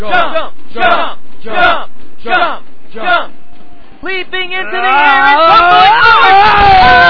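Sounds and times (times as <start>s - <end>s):
speech: 0.0s - 3.4s, 4.0s - 7.0s
wrestling arena crowd chanting encouragement in unison: 0.0s - 3.4s.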